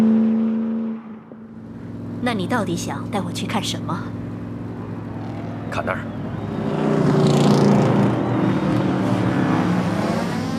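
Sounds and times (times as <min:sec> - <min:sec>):
cars revving hard in a street race: 0:00.0 - 0:10.5
speech: 0:02.2 - 0:04.2, 0:05.7 - 0:06.8.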